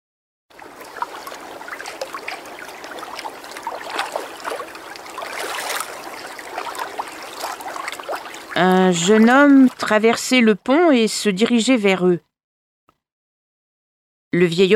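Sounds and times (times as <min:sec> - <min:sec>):
large river flowing with splashes and gurgles: 0:00.5 - 0:09.8
speech: 0:08.9 - 0:12.3, 0:14.3 - 0:14.7.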